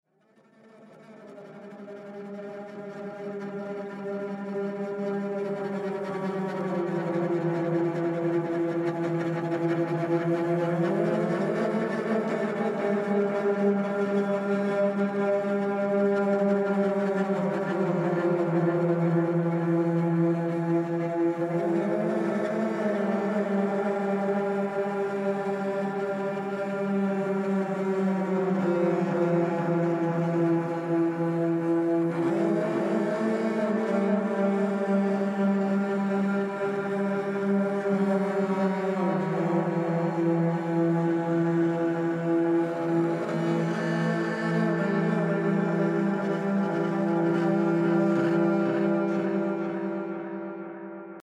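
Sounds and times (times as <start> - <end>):
badly played cello: 1.6 - 50.4.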